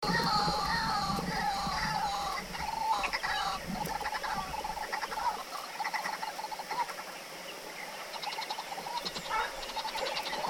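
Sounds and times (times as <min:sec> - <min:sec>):
white-breasted waterhen calling: 0:00.0 - 0:10.4.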